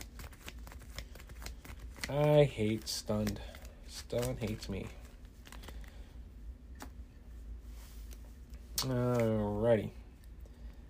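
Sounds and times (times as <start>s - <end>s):
deck of cards shuffled during a card game: 0.0s - 6.0s, 7.8s - 9.4s
speech: 2.1s - 5.0s, 8.8s - 10.0s.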